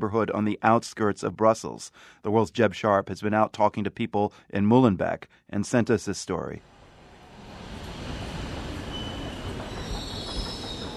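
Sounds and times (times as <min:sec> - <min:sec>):
speech: 0:00.0 - 0:06.8
Brussels subway train rumbling along the rails: 0:06.7 - 0:10.9
subway train high metallic wheel squeals: 0:08.3 - 0:10.9.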